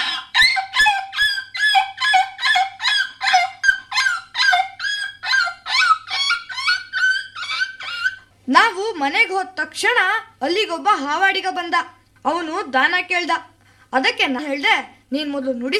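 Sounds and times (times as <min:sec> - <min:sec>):
puppy yelping in pain after being hit by an auto-rickshaw: 0:00.0 - 0:08.3
speech: 0:09.0 - 0:15.7.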